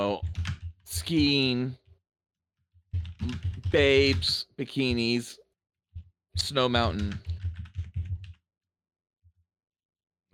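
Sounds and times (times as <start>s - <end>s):
typing on a computer keyboard: 0.0s - 1.4s, 2.9s - 5.2s, 6.0s - 8.4s
speech: 0.0s - 1.8s, 3.2s - 5.4s, 6.4s - 7.3s.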